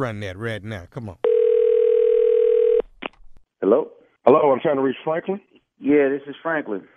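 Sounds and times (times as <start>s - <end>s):
speech: 0.0s - 1.2s, 3.6s - 6.9s
telephone line tone as a prank phone call connects: 1.2s - 2.8s.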